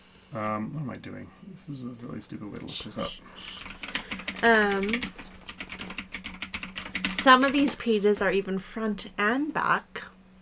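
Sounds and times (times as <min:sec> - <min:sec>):
speech: 0:00.3 - 0:05.3, 0:07.2 - 0:10.1
computer keyboard typing: 0:02.7 - 0:08.5.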